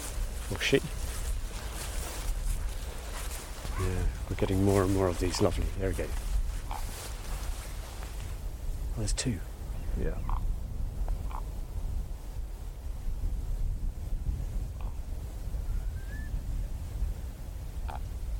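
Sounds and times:
steady wind rumble: 0.0s - 18.3s
speech: 0.5s - 1.0s, 3.8s - 6.3s, 9.0s - 10.5s
raven croaking and musical calls: 6.6s - 7.1s, 10.1s - 11.6s, 17.8s - 18.1s.

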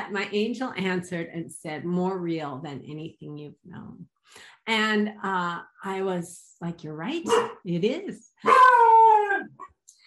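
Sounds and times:
speech: 0.1s - 9.7s
pet dog howling: 8.4s - 9.6s.

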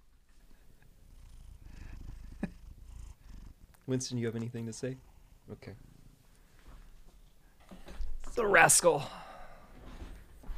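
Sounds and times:
cat purring: 0.3s - 6.2s
speech: 3.9s - 5.9s, 8.4s - 9.2s.

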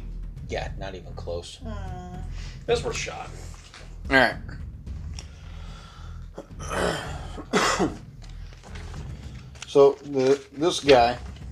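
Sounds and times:
low steady hum: 0.0s - 11.5s
speech: 0.5s - 4.7s, 6.6s - 8.0s, 9.7s - 11.3s
person coughing harshly: 6.5s - 8.0s
rasping throat-clearing: 6.6s - 8.0s.

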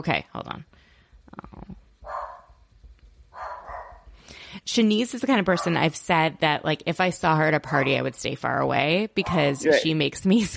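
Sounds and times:
speech: 0.0s - 0.7s, 4.6s - 10.5s
dog barking: 2.0s - 2.6s, 3.3s - 4.1s, 5.6s - 5.8s.

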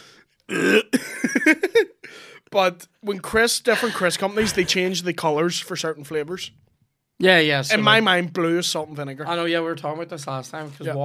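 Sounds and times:
person clearing throat: 0.5s - 1.2s, 3.7s - 4.7s
harsh cough: 0.5s - 1.7s, 3.7s - 4.8s
speech: 2.6s - 11.0s.

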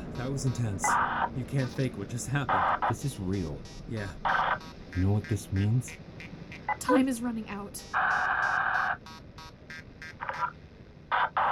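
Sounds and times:
loud electronic beeping interference: 0.0s - 1.9s, 2.5s - 5.9s, 7.8s - 10.5s
speech: 0.2s - 8.6s.

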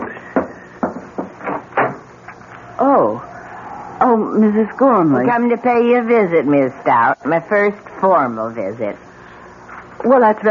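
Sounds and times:
front door of an old mansion opening: 1.4s - 2.1s
speech: 4.1s - 9.1s, 10.0s - 10.4s.

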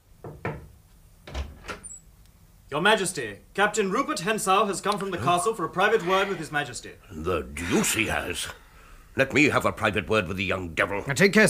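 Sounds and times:
knocking on a wooden door: 0.2s - 0.7s
speech: 2.7s - 8.6s, 9.2s - 11.4s.

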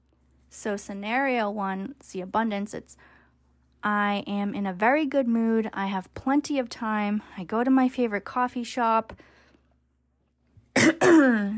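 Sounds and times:
speech: 0.5s - 3.1s, 3.8s - 9.3s, 10.9s - 11.5s
person coughing: 10.8s - 11.5s.

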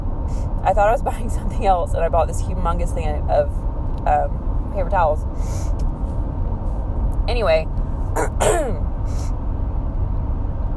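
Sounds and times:
low steady hum: 0.0s - 10.7s
speech: 0.6s - 5.9s, 7.3s - 9.4s
person with a cold clearing throat: 8.2s - 8.8s
person with a cold sniffing: 8.2s - 9.3s.

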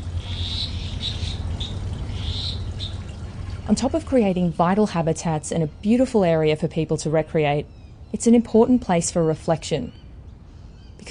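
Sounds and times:
frogs croaking in a pond: 0.0s - 3.9s
steady low outdoor rumble: 0.0s - 11.0s
speech: 3.7s - 10.0s.

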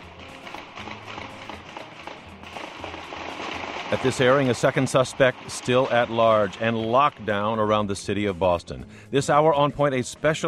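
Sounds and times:
gunshots at night: 0.0s - 6.8s
dense noisy background: 0.0s - 10.4s
speech: 3.9s - 10.4s.

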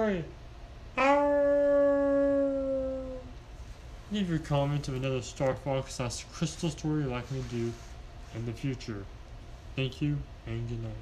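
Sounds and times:
speech: 0.0s - 0.4s, 4.1s - 9.2s, 9.8s - 11.0s
people howling together like wolves: 1.0s - 3.3s.

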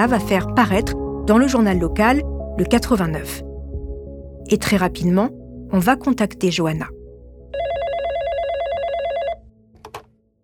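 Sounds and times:
speech: 0.0s - 3.5s, 4.5s - 7.0s
telephone bell ringing with rapid trilling electronic tones: 7.5s - 9.5s.

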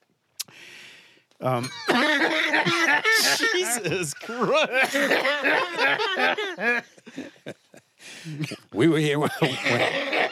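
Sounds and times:
soft breathy exhale: 0.5s - 1.2s
speech: 1.4s - 7.6s, 8.2s - 10.3s
deliberately faked cough: 1.6s - 5.4s, 8.3s - 10.1s
laughter: 1.6s - 10.3s.

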